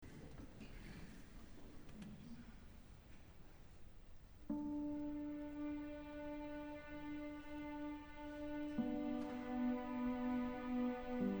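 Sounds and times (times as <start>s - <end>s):
violin concerto: 4.6s - 11.3s.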